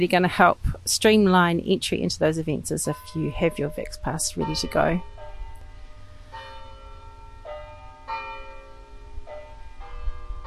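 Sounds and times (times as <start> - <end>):
speech: 0.0 - 5.1
low outdoor rumble of city traffic in a city square: 0.0 - 6.2
wind in a city square: 0.0 - 10.4
church bells pealing in a city square: 2.7 - 10.4.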